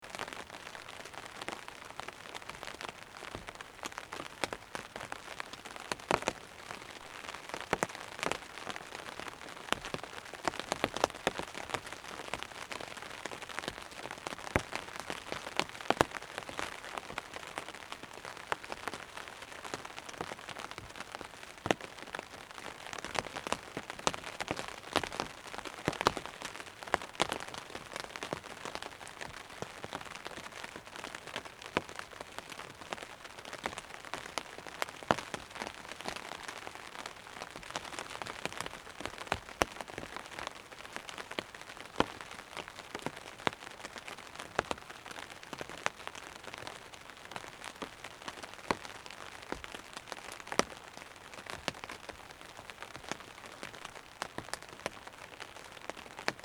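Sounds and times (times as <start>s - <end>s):
rain on a tent: 0.0s - 56.4s.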